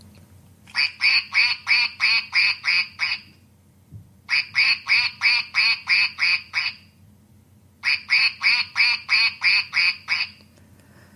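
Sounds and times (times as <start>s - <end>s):
squeezed rubber toy duck quacking: 0.8s - 3.3s, 4.3s - 6.9s, 7.8s - 10.4s.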